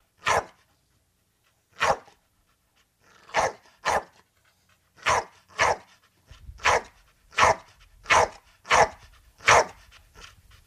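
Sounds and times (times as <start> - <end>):
pit bull barking: 0.2 - 0.6, 1.8 - 2.2, 3.3 - 4.2, 5.0 - 5.9, 6.6 - 9.8.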